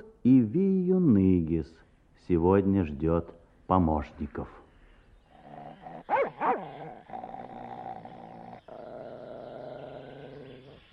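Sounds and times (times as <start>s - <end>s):
speech: 0.2s - 0.7s, 1.5s - 4.6s
dog growling: 5.3s - 10.9s
dog barking: 6.1s - 6.7s.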